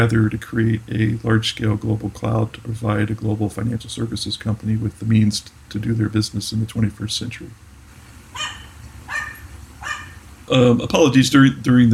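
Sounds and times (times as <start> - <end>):
speech: 0.0 - 7.6, 10.5 - 11.9
low rumble: 0.0 - 11.9
dog barking: 8.3 - 10.2.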